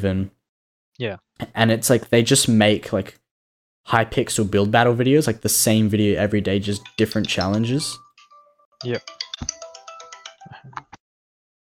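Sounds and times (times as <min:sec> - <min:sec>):
speech: 0:00.0 - 0:00.4, 0:01.0 - 0:03.2, 0:03.8 - 0:08.0, 0:08.8 - 0:09.6
phone ringtone with bright electronic tones: 0:06.8 - 0:11.0.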